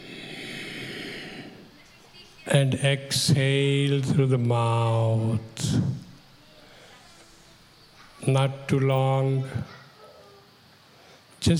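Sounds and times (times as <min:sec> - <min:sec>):
soft inhale through the nose during a guided breathing exercise: 0:00.0 - 0:01.7
speech: 0:02.5 - 0:06.0, 0:08.2 - 0:09.8.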